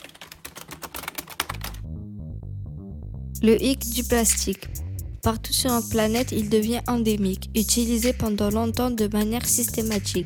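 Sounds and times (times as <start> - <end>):
rapid typing on a computer keyboard: 0.0 - 1.8
low musical tone: 1.6 - 8.0
speech: 3.4 - 10.2.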